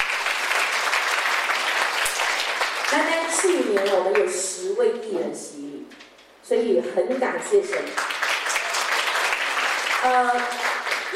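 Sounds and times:
church congregation applauding during a service: 0:00.0 - 0:04.3, 0:07.8 - 0:11.1
speech: 0:02.9 - 0:08.2, 0:10.0 - 0:10.6.

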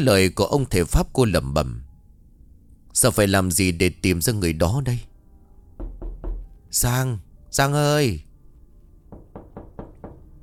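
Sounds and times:
speech: 0:00.0 - 0:01.8, 0:02.9 - 0:05.1, 0:06.7 - 0:08.3
knocking on a door: 0:05.8 - 0:06.6, 0:09.1 - 0:10.4.

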